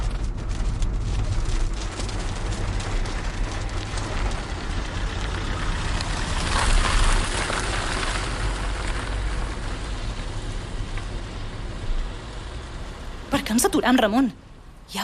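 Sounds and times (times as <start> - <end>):
low rumble: 0.0 - 14.9
steady rain easing after a storm: 0.0 - 15.0
speech: 13.5 - 15.0.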